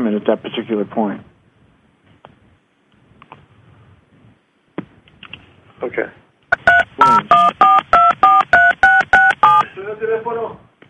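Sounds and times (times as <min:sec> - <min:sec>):
speech: 0:00.2 - 0:01.3, 0:05.8 - 0:06.2, 0:07.0 - 0:07.6, 0:09.8 - 0:10.6
touch-tone telephone dial beeps on a shared phone line: 0:06.5 - 0:09.6.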